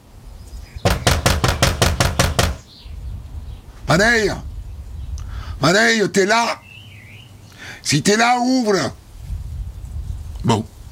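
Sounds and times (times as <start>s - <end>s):
knocking on a house door in rural France: 0.9s - 2.6s
speech: 3.9s - 4.5s, 5.6s - 6.6s, 7.8s - 9.0s, 10.4s - 10.7s.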